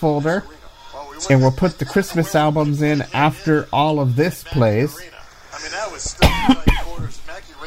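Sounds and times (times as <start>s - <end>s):
speech: 0.0s - 0.6s, 1.2s - 6.8s
person coughing: 6.2s - 7.1s.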